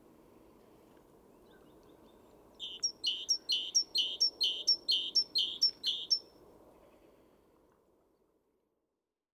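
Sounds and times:
Great tit Parus major buzzy chatter call: 2.6 - 6.2.

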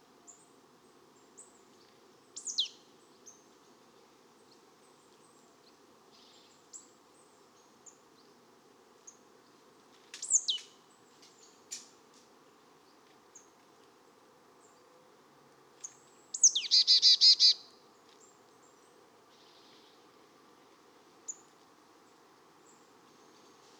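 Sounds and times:
marsh tit Poecile palustris calls: 16.4 - 17.5.

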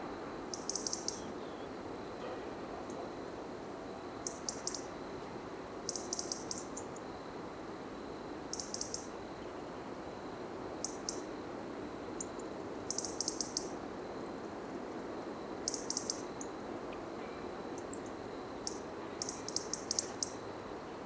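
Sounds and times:
steady background hiss: 0.0 - 21.0
European robin Erithacus rubecula ticking calls: 0.5 - 1.7, 4.2 - 4.9, 5.9 - 6.9, 8.5 - 9.2, 10.8 - 11.3, 12.2 - 13.8, 15.7 - 16.5, 17.8 - 20.4.

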